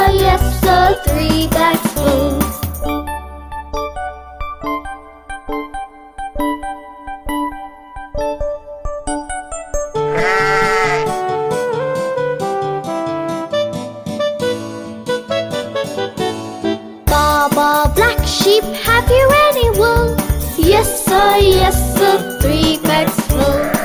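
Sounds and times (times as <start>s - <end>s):
bouncy children's nursery-rhyme tune of plucked and keyed notes: 0.0s - 23.8s
sheep bleating: 10.1s - 11.2s, 23.4s - 23.8s.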